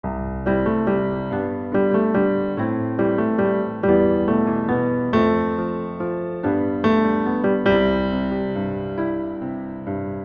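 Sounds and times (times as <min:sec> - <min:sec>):
old piano: 0:00.0 - 0:10.2.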